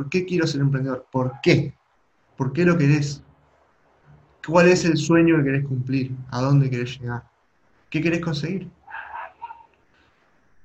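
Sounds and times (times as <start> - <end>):
speech: 0.0 - 1.8, 2.4 - 3.3, 4.4 - 7.3, 7.9 - 8.8
faint lingering whine: 0.0 - 10.6
dog barking in short yapping bursts: 1.3 - 1.6, 8.8 - 9.7.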